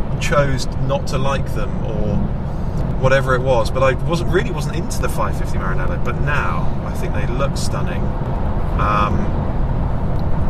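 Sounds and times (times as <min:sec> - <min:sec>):
V8 Lexus cabin road and engine noise on the M4 motorway: 0:00.0 - 0:10.4
speech: 0:00.3 - 0:02.3, 0:03.0 - 0:09.5.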